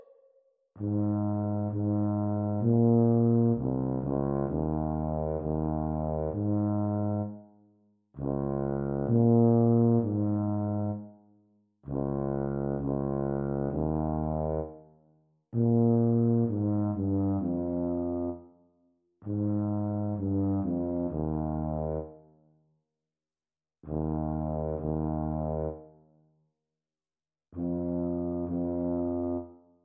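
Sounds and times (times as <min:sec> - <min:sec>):
E-flat tuba duet practice: 0:00.8 - 0:07.6, 0:08.2 - 0:11.3, 0:11.9 - 0:15.0, 0:15.5 - 0:18.5, 0:19.3 - 0:22.4, 0:23.9 - 0:26.1, 0:27.6 - 0:29.6.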